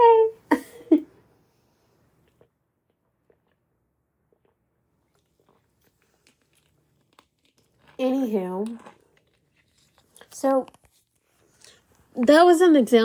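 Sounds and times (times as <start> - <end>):
person sipping a drink: 2.2 - 12.0
speech: 8.2 - 9.0, 10.4 - 10.8, 12.2 - 13.0.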